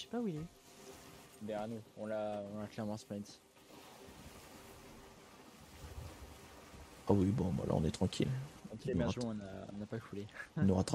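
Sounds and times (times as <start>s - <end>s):
speech: 0.0s - 0.6s, 1.4s - 3.5s, 7.1s - 10.9s
ocean surf rushing: 0.0s - 2.5s, 3.5s - 9.2s
stormy wind roaring: 4.0s - 8.8s.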